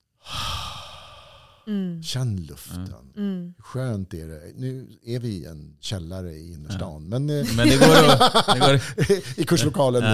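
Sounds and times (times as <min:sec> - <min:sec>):
deep slow breath drawn in close to the microphone: 0:00.2 - 0:01.7
speech: 0:01.7 - 0:10.1
laughter: 0:07.4 - 0:10.0.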